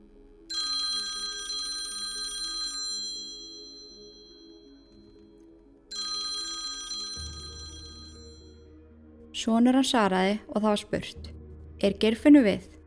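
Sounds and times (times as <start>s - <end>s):
home telephone bell ringing: 0.5s - 5.3s, 5.9s - 8.6s
speech: 9.4s - 12.8s.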